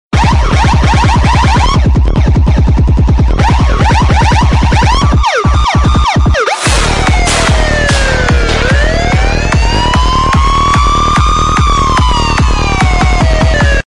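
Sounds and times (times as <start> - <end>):
remixed police siren ringtone: 0.2 - 13.8.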